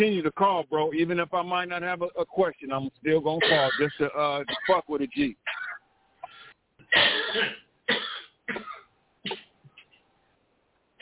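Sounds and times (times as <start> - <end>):
speech: 0.0 - 5.6, 6.9 - 9.5
person coughing: 3.4 - 4.8, 5.5 - 9.5.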